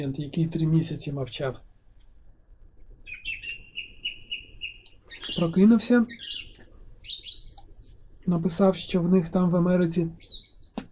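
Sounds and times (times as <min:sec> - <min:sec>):
speech: 0:00.0 - 0:01.7, 0:05.4 - 0:06.4, 0:08.2 - 0:10.3
birds chirping outdoors: 0:02.8 - 0:10.9.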